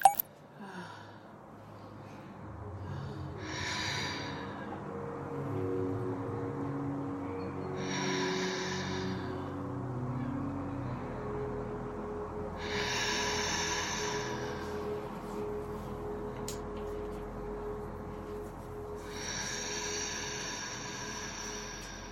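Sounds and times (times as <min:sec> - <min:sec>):
slow controlled breathing: 0:00.5 - 0:22.1.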